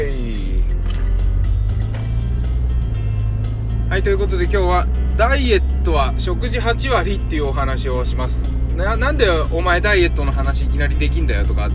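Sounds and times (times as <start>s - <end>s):
car engine rumble as the vehicle drives and turns at an intersection: 0.0s - 11.7s
speech: 4.0s - 11.7s.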